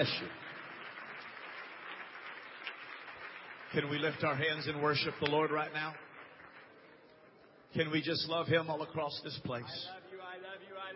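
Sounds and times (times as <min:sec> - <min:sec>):
speech: 0:00.0 - 0:00.4, 0:03.7 - 0:06.1, 0:07.7 - 0:10.9
congregation clapping hands in praise at a church worship service: 0:00.0 - 0:08.0.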